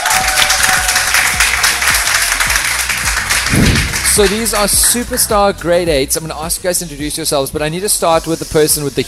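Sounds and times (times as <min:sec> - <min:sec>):
high school audience applauding spelling bee champions: 0:00.0 - 0:05.3
speech: 0:04.2 - 0:09.0.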